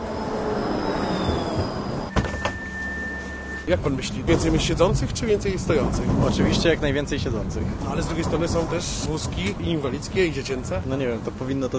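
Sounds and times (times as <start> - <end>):
tram electric motor whine: 0.0 - 3.6
high tram door warning tone: 0.0 - 4.1
low-floor tram rumbling in: 0.0 - 11.7
speech: 3.7 - 11.7.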